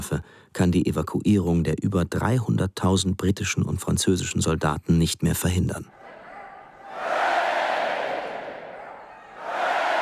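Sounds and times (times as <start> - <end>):
speech: 0.0 - 6.0
crowd of British people cheering: 5.9 - 10.0.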